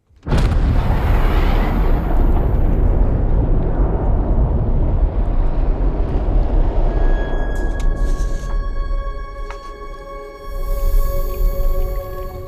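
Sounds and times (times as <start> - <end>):
atomic bomb explosion rumbling roar from film: 0.2 - 9.4
high sustained tones: 6.9 - 12.4.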